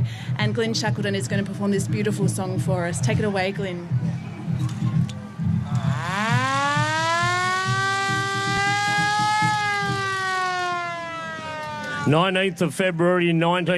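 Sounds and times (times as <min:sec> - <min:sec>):
speech: 0:00.4 - 0:04.7, 0:12.1 - 0:13.7
war air-raid siren wailing: 0:05.6 - 0:12.4.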